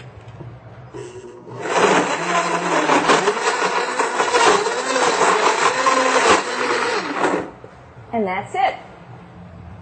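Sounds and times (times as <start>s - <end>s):
blender whirring while blending fruit: 1.0s - 7.6s
speech: 8.2s - 8.9s.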